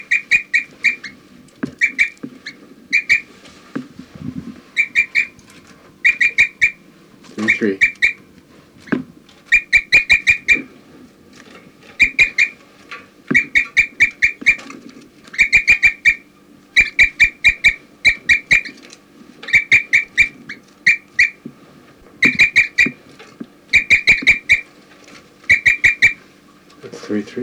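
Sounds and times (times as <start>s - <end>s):
bird chirping and giving flight calls: 0.0s - 3.8s, 4.6s - 10.8s, 11.9s - 12.7s, 13.3s - 18.8s, 19.4s - 21.4s, 22.1s - 24.8s, 25.4s - 26.3s
low hum: 0.0s - 27.4s
speech: 7.6s - 7.9s.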